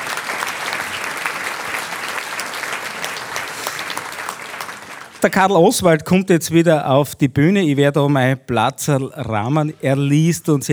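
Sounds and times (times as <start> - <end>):
audience applause: 0.0 - 5.5
speech: 5.2 - 10.7.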